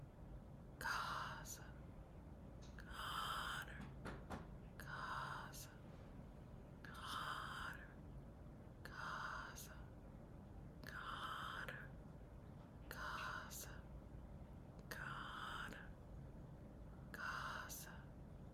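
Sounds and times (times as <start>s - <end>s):
faint low hum: 0.0s - 18.5s
breathy whisper repeating a short word: 0.8s - 1.7s, 2.8s - 3.8s, 4.8s - 5.8s, 6.8s - 8.0s, 8.8s - 9.8s, 10.8s - 11.9s, 12.9s - 13.8s, 14.8s - 15.9s, 17.1s - 18.1s.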